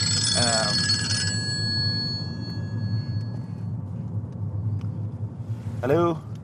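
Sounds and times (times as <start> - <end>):
telephone bell ringing: 0.0 - 3.5
steady low rumble: 0.0 - 6.4
speech: 5.8 - 6.3.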